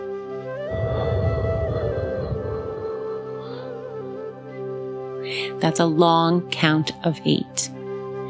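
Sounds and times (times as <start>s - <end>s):
steady sustained musical drone: 0.5s - 5.2s
slow breathy exhale: 0.6s - 4.2s
speech: 5.5s - 7.8s.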